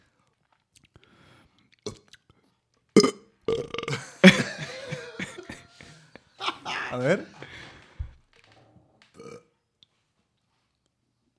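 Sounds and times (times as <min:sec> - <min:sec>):
clicks and gulps of drinking: 0:00.6 - 0:03.9
loud burp after drinking: 0:03.0 - 0:04.3, 0:09.1 - 0:09.5
laughter: 0:04.0 - 0:08.0
speech: 0:06.9 - 0:07.6.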